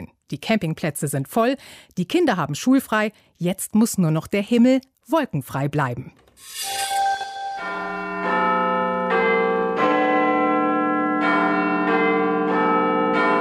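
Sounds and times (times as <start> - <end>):
speech: 0.3 - 6.9
largest clock tower bell in London chiming: 7.0 - 13.3.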